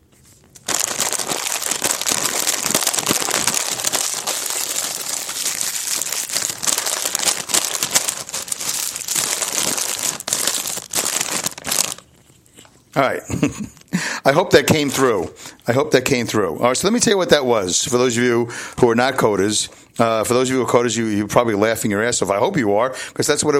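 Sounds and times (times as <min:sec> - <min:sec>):
nacho cheese Doritos bag crinkling: 0:00.1 - 0:12.8
speech: 0:13.0 - 0:23.5.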